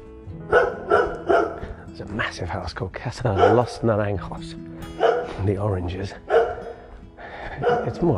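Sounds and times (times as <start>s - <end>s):
dog barking: 0.4s - 1.8s, 3.3s - 3.9s, 5.0s - 5.4s, 6.3s - 6.8s, 7.5s - 8.1s
speech: 2.0s - 4.7s, 5.4s - 6.3s, 7.6s - 8.1s.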